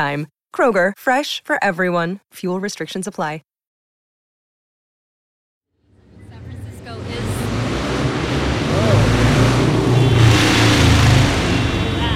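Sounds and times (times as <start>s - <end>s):
speech: 0.0s - 3.5s
loud old-school motorcycle engine revving hard as it passes a parklet: 5.9s - 12.1s.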